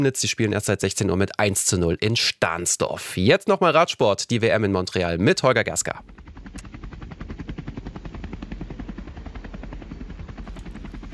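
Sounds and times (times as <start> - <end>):
speech: 0.0 - 6.3
helicopter rotor chopping overhead: 5.0 - 11.1.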